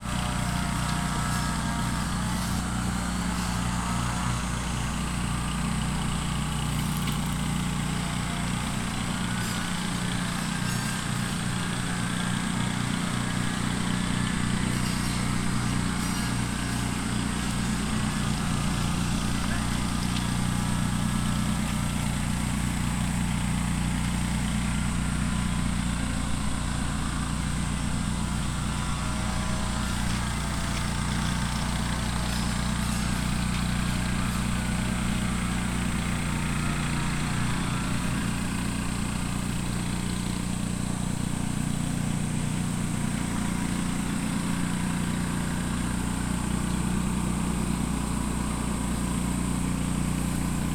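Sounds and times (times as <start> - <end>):
mowing in Fukushima: 0.0 - 50.7.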